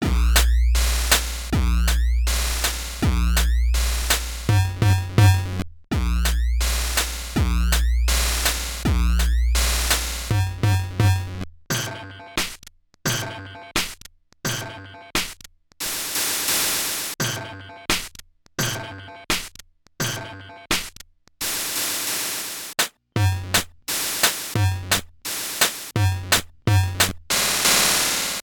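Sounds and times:
Atari drums: 0:00.0 - 0:28.4.

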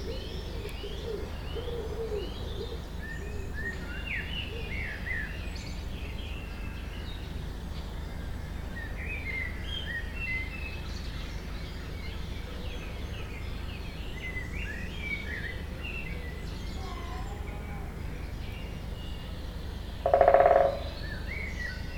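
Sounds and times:
other birds chirping and twittering: 0:00.0 - 0:21.9
woodpecker drumming: 0:19.9 - 0:21.2.

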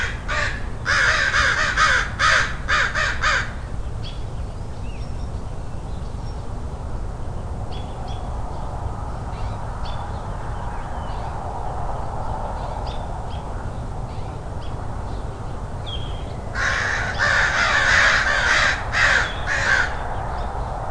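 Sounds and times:
crow cawing: 0:00.0 - 0:03.7, 0:16.6 - 0:20.0
low steady rumble: 0:00.0 - 0:20.8.

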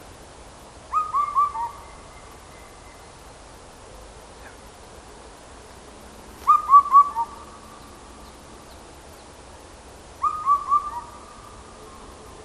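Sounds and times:
Indian cuckoo whistled calls: 0:00.9 - 0:03.1, 0:06.4 - 0:08.4, 0:10.2 - 0:12.1.

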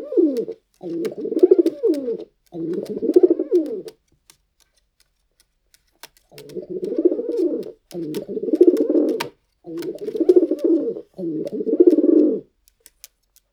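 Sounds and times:
pigeon cooing while walking: 0:00.0 - 0:04.0, 0:06.3 - 0:12.5.

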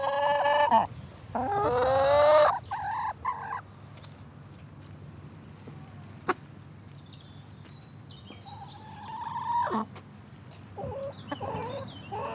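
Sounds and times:
chickens on a farm squawking and clucking, waiting to be fed: 0:00.0 - 0:03.6, 0:08.5 - 0:10.0, 0:10.8 - 0:12.3
wind: 0:00.0 - 0:12.3.

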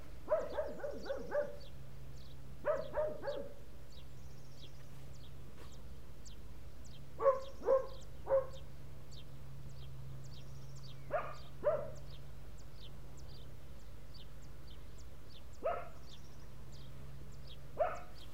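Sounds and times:
dogs barking in the countryside: 0:00.2 - 0:01.7, 0:02.6 - 0:03.6, 0:07.2 - 0:08.6, 0:11.1 - 0:12.2, 0:15.6 - 0:16.2, 0:17.8 - 0:18.3.

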